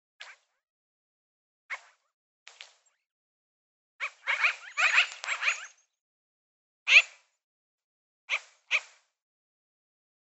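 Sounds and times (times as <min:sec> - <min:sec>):
magpie chattering in rough rasping notes: 0:04.0 - 0:05.8.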